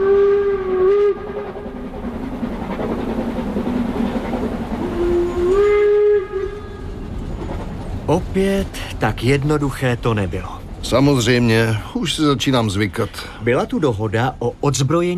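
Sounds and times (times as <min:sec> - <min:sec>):
shrill steam train whistle: 0:00.0 - 0:01.6, 0:04.8 - 0:07.0
steam train rumbling and chugging: 0:00.0 - 0:13.9
speech: 0:08.1 - 0:15.1.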